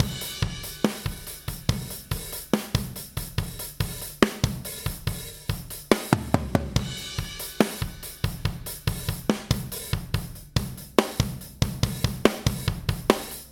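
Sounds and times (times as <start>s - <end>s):
heavy rock drums: 0.0s - 13.5s.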